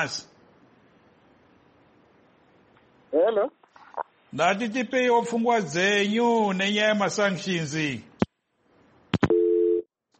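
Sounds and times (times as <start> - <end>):
speech: 0.0 - 0.3, 3.2 - 3.6, 4.3 - 8.1
two-pitch telephone line tone after a dropped call: 9.2 - 9.9.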